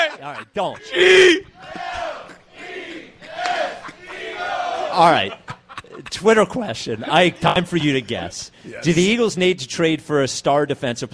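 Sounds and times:
laughter: 0.0s - 6.5s, 7.2s - 8.3s
speech: 0.1s - 1.8s, 5.0s - 5.4s, 6.1s - 11.1s
large crowd chanting in unison: 0.9s - 5.0s.

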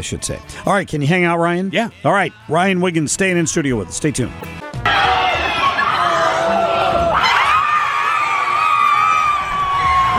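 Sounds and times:
speech: 0.0s - 4.8s
crowd cheering wildly after a buzzer beater: 4.8s - 10.1s
children yelling in the crowd: 4.9s - 10.1s.

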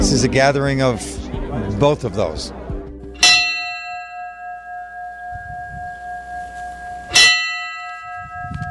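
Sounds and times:
speech: 0.1s - 2.6s
large bell tolling: 3.2s - 8.6s.

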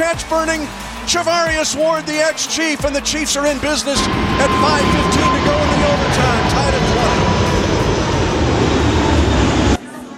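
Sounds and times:
speech: 0.1s - 7.5s
jet airplane flying overhead: 4.0s - 10.1s.

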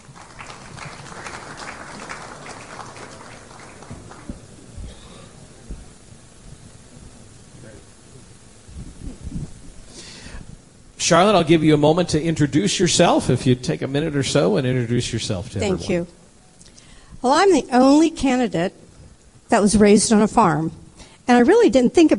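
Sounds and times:
scattered claps: 0.0s - 4.9s
audience applause: 0.0s - 5.0s
murmuring room noise: 0.0s - 21.7s
speech: 11.1s - 16.2s, 17.2s - 18.8s, 19.5s - 22.1s.

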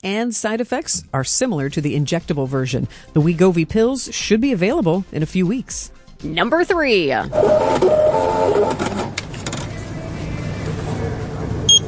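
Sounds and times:
speech: 0.0s - 9.1s
lottery terminal printing a Powerball ticket: 7.3s - 11.8s.

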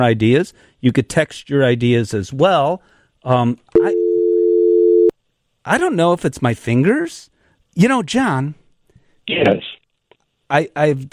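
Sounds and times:
speech: 0.0s - 4.0s, 5.6s - 8.6s, 9.3s - 9.8s, 10.5s - 11.1s
telephone busy signal after hanging up on a caller: 3.8s - 5.1s.

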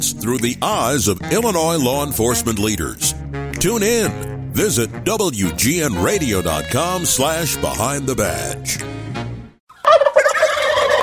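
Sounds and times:
speech: 0.0s - 9.0s
turkey gobbling: 9.7s - 11.0s.

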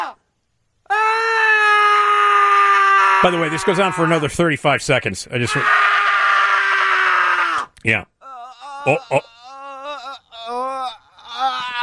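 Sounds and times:
group of about thirty men screaming: 0.9s - 4.3s, 5.5s - 7.7s, 8.4s - 11.8s
speech: 3.2s - 5.9s, 7.8s - 8.1s, 8.8s - 9.3s.

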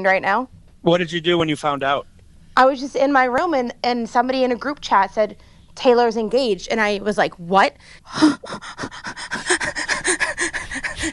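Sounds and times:
speech: 0.0s - 10.6s
person panting rapidly and excitedly: 7.8s - 11.1s.

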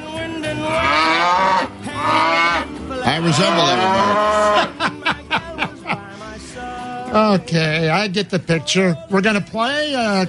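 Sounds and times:
cow mooing: 0.7s - 4.8s
speech: 3.1s - 4.9s, 7.1s - 10.2s
laughter: 3.2s - 6.4s.

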